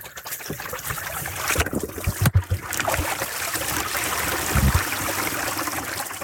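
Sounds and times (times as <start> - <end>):
splashes and knocks at a beaver dam: 0.0 - 3.8
water rushing through a gap in a beaver dam: 1.2 - 6.2.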